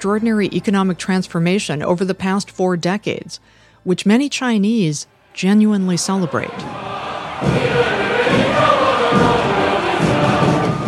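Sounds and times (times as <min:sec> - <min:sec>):
speech: 0:00.0 - 0:08.0
large crowd roaring and cheering at a military parade: 0:06.2 - 0:10.8
low rumbling thuds: 0:06.5 - 0:10.8.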